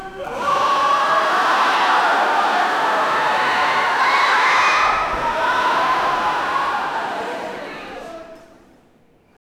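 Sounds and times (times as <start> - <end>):
crowd at an indoor swimming pool: 0.0 - 9.4.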